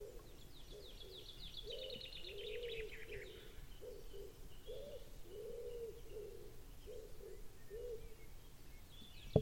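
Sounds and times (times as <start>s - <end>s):
common wood pigeon cooing in soft low hoots: 0.0s - 8.2s.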